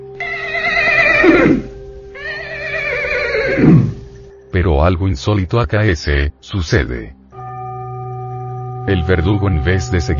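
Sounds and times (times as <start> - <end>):
horse neighing: 0.2 - 4.2
speech: 4.6 - 7.2, 8.9 - 10.1.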